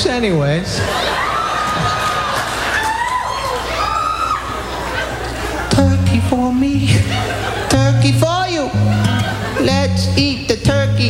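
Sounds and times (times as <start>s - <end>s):
speech: 0.0s - 1.1s, 5.8s - 11.0s
laughter: 0.6s - 11.0s
audience clapping and cheering: 1.0s - 5.6s.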